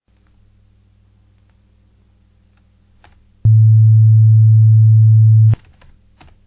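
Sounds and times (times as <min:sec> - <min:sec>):
harmonic scale: 0:03.5 - 0:05.6.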